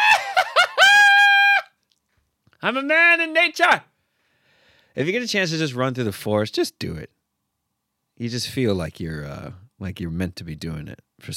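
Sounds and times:
man imitating shrill childlike yelps and shriek: 0:00.0 - 0:01.8
speech: 0:02.6 - 0:03.9, 0:05.0 - 0:07.2, 0:08.2 - 0:11.3.

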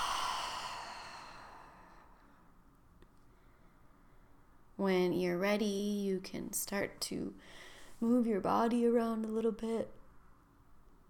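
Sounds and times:
breathy exhale through open mouth during guided breathing exercise: 0:00.0 - 0:02.2
speech: 0:04.8 - 0:10.0.

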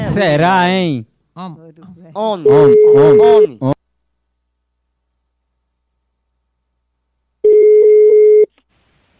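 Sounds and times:
speech: 0:00.2 - 0:03.8
telephone ringback tone on a call being dialed: 0:02.5 - 0:03.5, 0:07.4 - 0:08.5.

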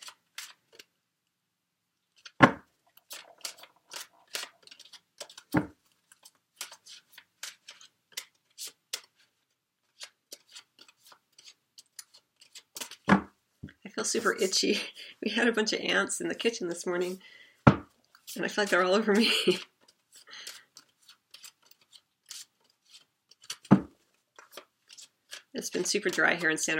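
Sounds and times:
deck of tarot cards being shuffled: 0:00.0 - 0:00.9, 0:02.1 - 0:13.2, 0:18.1 - 0:26.6
speech: 0:14.0 - 0:17.4, 0:18.4 - 0:19.7, 0:25.8 - 0:26.7.

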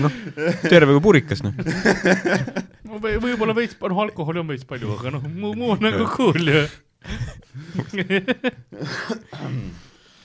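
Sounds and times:
laughter: 0:00.0 - 0:03.6, 0:04.8 - 0:09.3
speech: 0:00.0 - 0:09.9
smoker's raspy coughing fit: 0:08.8 - 0:09.9
wheezy throat clearing: 0:08.8 - 0:10.0.

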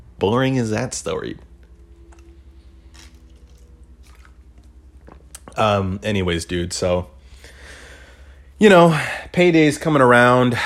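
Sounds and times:
low steady hum: 0:00.0 - 0:10.6
speech: 0:00.2 - 0:01.5, 0:05.6 - 0:07.1, 0:08.6 - 0:10.6
wet slurping sips of coffee: 0:02.0 - 0:05.6.

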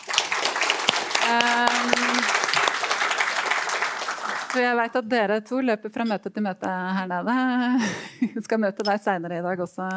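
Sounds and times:
crowd applauding: 0:00.0 - 0:04.8
speech: 0:01.3 - 0:02.0, 0:04.5 - 0:09.9.

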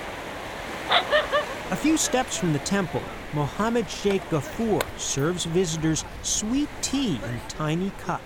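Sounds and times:
speech: 0:00.9 - 0:01.2, 0:01.8 - 0:08.2
sea surf breaking on the shore: 0:01.6 - 0:06.2.

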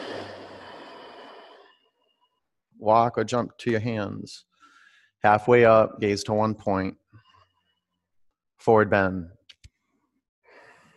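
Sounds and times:
person breathing in and out during a yoga flow: 0:00.0 - 0:02.4, 0:04.6 - 0:05.2, 0:10.4 - 0:10.9
speech: 0:02.8 - 0:04.5, 0:05.2 - 0:07.0, 0:08.6 - 0:09.4.

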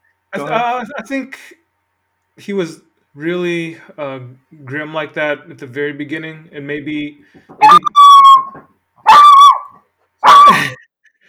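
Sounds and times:
speech: 0:00.3 - 0:01.6, 0:02.4 - 0:08.0
dog whining and yelping: 0:07.6 - 0:10.8.

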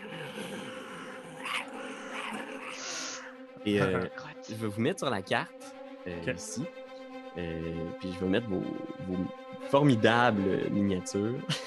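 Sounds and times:
wolves growling: 0:00.0 - 0:02.9
wolf snarling: 0:00.0 - 0:03.0
speech: 0:03.6 - 0:06.8, 0:07.4 - 0:11.6
laughter: 0:03.7 - 0:04.1, 0:07.4 - 0:11.6.

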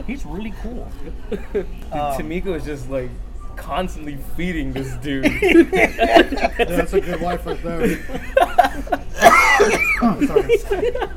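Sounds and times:
speech: 0:00.1 - 0:09.0, 0:09.6 - 0:11.1
person laughing loudly: 0:05.3 - 0:11.1
harsh coughs after hard laughter: 0:07.5 - 0:10.5.

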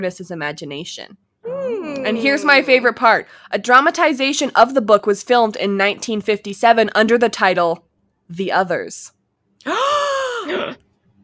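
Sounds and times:
speech: 0:00.0 - 0:01.2, 0:01.9 - 0:10.8
loud drawn-out voiced gasp: 0:09.6 - 0:10.7.

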